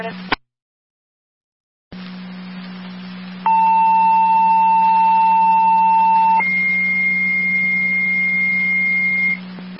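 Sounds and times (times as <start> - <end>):
constant hum: 1.9 - 9.7
fire dispatch pager tones over a radio channel: 3.5 - 9.4.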